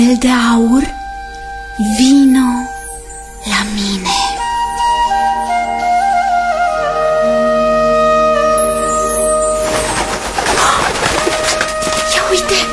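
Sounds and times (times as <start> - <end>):
speech: 0.0 - 1.0, 1.8 - 2.7, 3.4 - 4.2
sustained shimmering musical tones: 0.0 - 11.2
pigeon cooing: 9.0 - 12.7.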